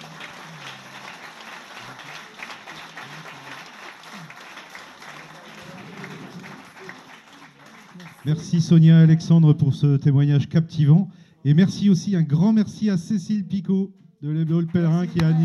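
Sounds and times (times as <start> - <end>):
sustained audience applause at the end of an evening talk: 0.0 - 8.5, 14.6 - 15.4
speech: 8.2 - 15.4.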